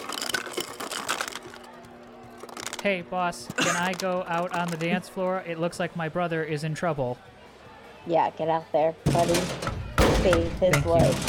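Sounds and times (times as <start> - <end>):
ice clattering out of a smart fridge's dispenser: 0.0 - 3.0, 3.6 - 5.1
speech: 2.8 - 7.3, 8.0 - 11.2.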